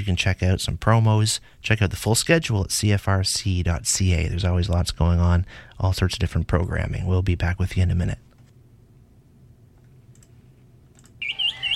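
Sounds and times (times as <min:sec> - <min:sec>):
speech: 0:00.0 - 0:08.3
low hum: 0:00.0 - 0:11.7
wood thrush singing bright fluty whistled notes: 0:11.2 - 0:11.7.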